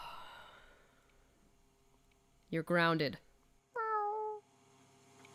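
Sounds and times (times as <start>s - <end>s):
speech: 2.5s - 3.3s
cat meowing with a falling pitch: 3.8s - 4.4s.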